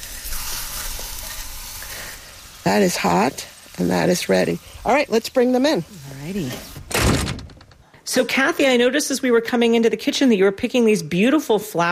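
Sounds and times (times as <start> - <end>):
food coated in hot boiling sugar sizzling on a grill: 0.0 - 6.9
speech: 2.6 - 6.7, 8.2 - 11.9.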